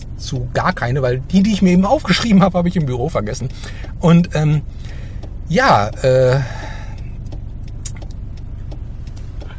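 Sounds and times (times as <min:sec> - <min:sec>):
car interior road noise while driving: 0:00.0 - 0:09.5
speech: 0:00.2 - 0:06.6
faint rattling clicks: 0:02.2 - 0:09.5.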